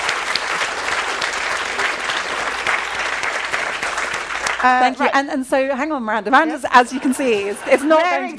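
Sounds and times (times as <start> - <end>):
sizable audience applauding a speaker at a talk session: 0.0 - 5.2
speech: 4.6 - 8.3.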